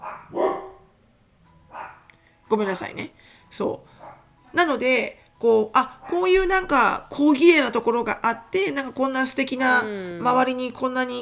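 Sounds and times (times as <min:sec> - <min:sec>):
dog barking: 0:00.0 - 0:00.9, 0:01.7 - 0:02.1, 0:04.0 - 0:04.3
speech: 0:02.5 - 0:11.1.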